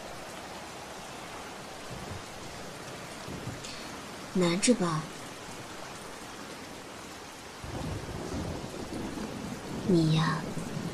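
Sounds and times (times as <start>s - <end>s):
heavy rain falling outside a home's front door during a thunderstorm: 0.0s - 10.9s
faint low thunder rumbling: 0.8s - 5.9s, 7.4s - 10.9s
speech: 4.4s - 5.2s, 9.9s - 10.5s.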